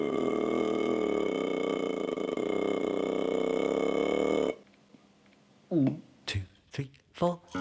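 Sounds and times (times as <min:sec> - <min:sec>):
long loud rumbling burp: 0:00.0 - 0:04.6
speech: 0:07.2 - 0:07.5.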